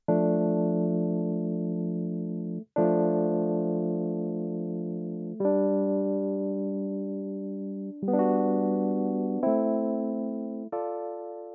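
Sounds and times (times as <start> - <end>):
electronic keyboard playing slow chord progression: 0.0 - 11.5.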